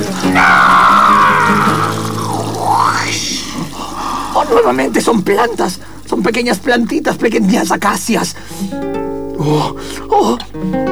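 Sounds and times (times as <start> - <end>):
water splashing sound effect of water thrown into a face: 0.0 - 6.0
speech: 0.2 - 0.6, 4.4 - 10.9.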